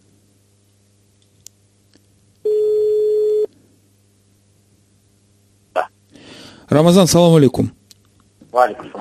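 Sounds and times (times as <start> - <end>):
telephone ringback tone while dialing a caller: 2.5 - 3.5
speech: 6.7 - 7.8, 8.6 - 8.9.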